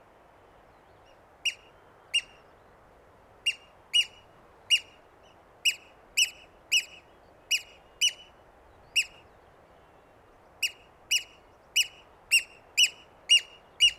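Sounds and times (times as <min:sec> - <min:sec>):
Haematopus ostralegus Eurasian oystercatcher calling with clipped piping notes: 0:03.5 - 0:05.0, 0:05.7 - 0:08.3, 0:09.0 - 0:09.2, 0:10.6 - 0:13.9.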